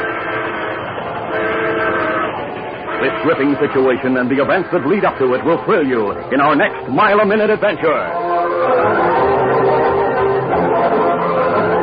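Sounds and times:
fast-approaching train horn blaring: 0.0s - 4.0s, 8.0s - 11.8s
speech: 3.0s - 9.0s.

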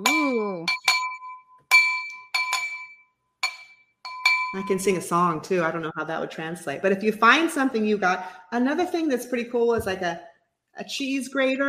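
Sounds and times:
water glass being tapped: 0.0s - 5.0s
speech: 4.5s - 11.6s.

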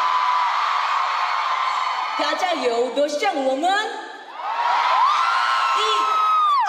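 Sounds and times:
large crowd of fans cheering and whooping: 0.0s - 2.4s, 4.3s - 6.6s
speech: 2.2s - 4.1s
high-pitched screams from fans: 4.4s - 6.6s.

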